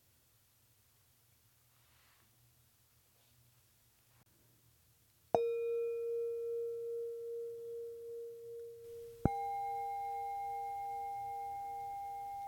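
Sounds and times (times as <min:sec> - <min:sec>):
singing bowls ringing in pure sustained tones: 0:05.4 - 0:12.4.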